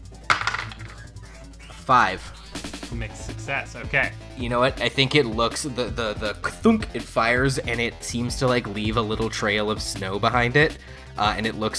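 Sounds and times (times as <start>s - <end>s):
two dice rolling on a table: 0.3s - 1.1s
speech: 1.9s - 11.7s.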